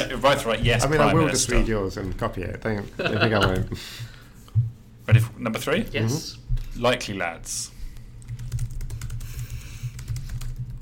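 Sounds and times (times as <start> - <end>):
speech: 0.2 - 4.1, 5.1 - 7.8
rapid typing on a computer keyboard: 8.2 - 10.8.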